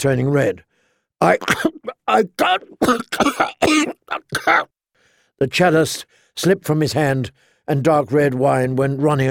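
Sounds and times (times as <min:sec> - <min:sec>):
speech: 0:00.0 - 0:04.8, 0:05.4 - 0:09.2
person gasping: 0:00.7 - 0:01.1, 0:01.9 - 0:05.4
person acting out choking coughs: 0:01.2 - 0:04.7.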